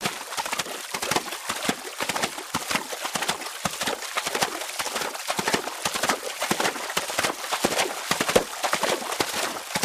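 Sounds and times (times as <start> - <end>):
horse galloping through water: 0.0 - 9.8.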